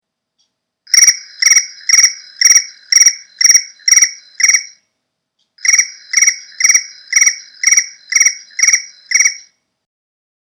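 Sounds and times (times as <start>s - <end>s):
cricket chirping: 0.9s - 4.8s, 5.6s - 9.5s.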